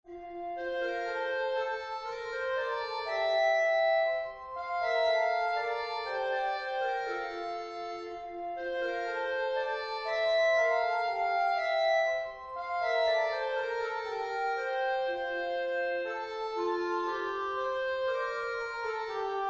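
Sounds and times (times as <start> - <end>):
clarinet playback: 0.1 - 19.4.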